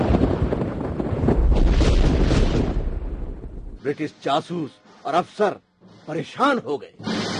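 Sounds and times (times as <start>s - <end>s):
bomb explosion in Pune: 0.0s - 3.8s
speech: 3.9s - 7.2s.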